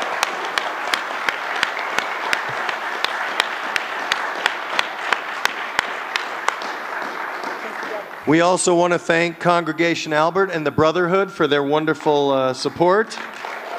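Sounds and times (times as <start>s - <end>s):
single sharp clapper keeping an even rhythm: 0.0s - 8.1s
audience applauding candidates: 0.0s - 9.4s, 12.0s - 13.7s
speech: 8.3s - 13.4s.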